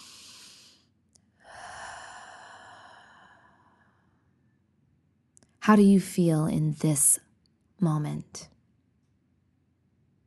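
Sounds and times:
deep breath during a guided breathing moment: 0.0s - 4.3s
speech: 5.6s - 8.5s.

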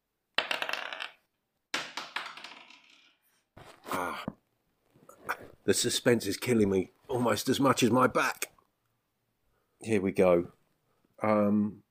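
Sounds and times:
dice rolling on a hard surface: 0.4s - 3.4s
speech: 5.7s - 8.5s, 9.8s - 10.6s, 11.2s - 11.8s.

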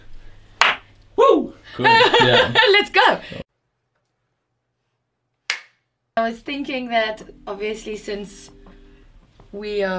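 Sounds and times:
single sharp hand clap: 0.6s - 0.9s, 5.5s - 5.8s
laughter: 1.8s - 2.9s
speech: 1.8s - 3.4s, 6.3s - 8.6s, 9.5s - 9.9s.

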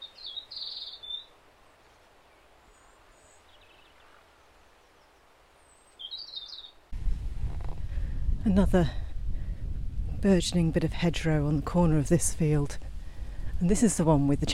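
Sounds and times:
meadow pipits calling in high thin chirps: 0.0s - 6.9s
low rumble: 7.0s - 13.7s
speech: 8.4s - 9.0s, 10.2s - 12.9s, 13.6s - 14.5s.

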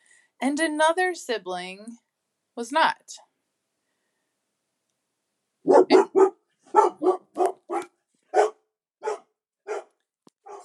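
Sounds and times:
speech: 0.4s - 2.0s, 2.6s - 3.3s
dog barking: 5.6s - 10.6s.

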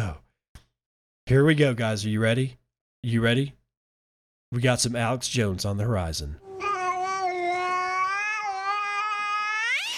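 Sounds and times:
speech: 1.3s - 3.6s, 4.5s - 6.5s
cat meowing: 6.4s - 9.9s.

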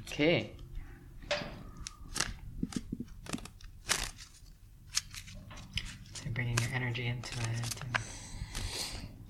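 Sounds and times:
speech: 0.2s - 0.6s, 6.9s - 8.0s
cards being shuffled: 1.8s - 9.2s.

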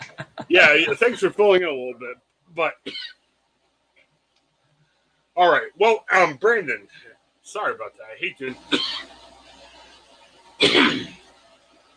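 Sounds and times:
laughter: 0.0s - 1.8s
speech: 0.5s - 3.2s, 5.4s - 9.2s, 10.6s - 11.2s
harsh cough or throat-clear: 2.8s - 3.2s, 8.7s - 9.1s, 10.6s - 11.2s.

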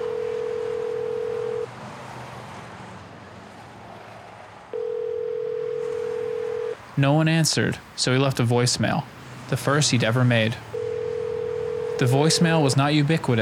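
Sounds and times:
payphone dial tone: 0.0s - 1.7s, 4.8s - 6.8s, 9.6s - 13.3s
speech: 7.0s - 10.7s, 12.0s - 13.3s.

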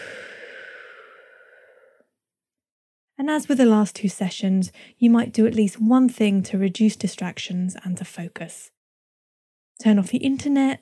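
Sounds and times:
deep breath out during a guided stretching warm-up: 0.0s - 2.1s
speech: 3.2s - 8.8s, 9.8s - 10.7s.

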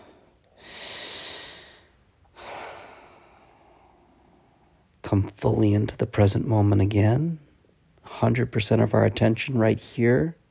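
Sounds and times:
long deep human breath: 0.0s - 4.8s
speech: 5.1s - 7.4s, 8.1s - 10.4s.

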